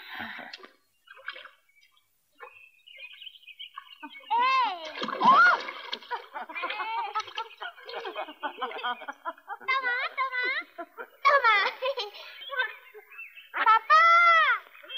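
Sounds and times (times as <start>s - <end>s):
water splashing as someone is put into the water: 0.5s - 1.7s, 3.7s - 8.3s
people talking and laughing: 4.0s - 14.9s.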